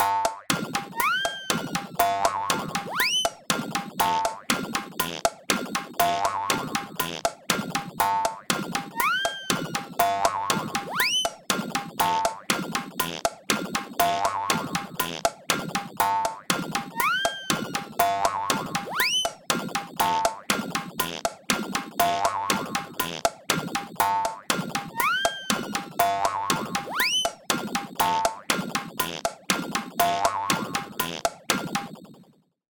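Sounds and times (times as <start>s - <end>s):
clumsy cartoon machine: 0.0s - 32.4s.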